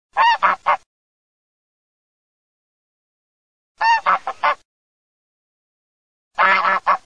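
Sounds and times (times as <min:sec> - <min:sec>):
wild goose calling: 0:00.2 - 0:00.8, 0:03.8 - 0:04.6, 0:06.4 - 0:07.0.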